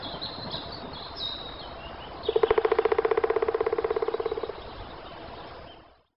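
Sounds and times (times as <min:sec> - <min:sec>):
black woodpecker drumming: 0:02.2 - 0:04.7.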